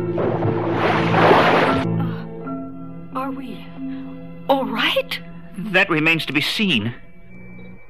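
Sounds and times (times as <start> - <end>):
spaceship splashing down into the sea: 0.0 - 1.9
speech: 4.5 - 7.0.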